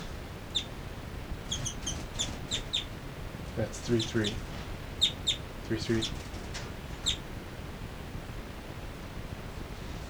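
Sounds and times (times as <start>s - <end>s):
two birds singing in high short chirps: 0.0s - 7.3s
steady noise: 0.0s - 10.0s
speech: 3.6s - 4.5s, 5.7s - 6.3s.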